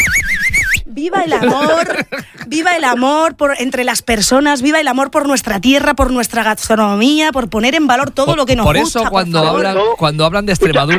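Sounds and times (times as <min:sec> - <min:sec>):
person whistling a warbling tone: 0:00.0 - 0:00.9
speech: 0:01.0 - 0:10.9
laughter: 0:01.1 - 0:03.2, 0:10.6 - 0:10.9.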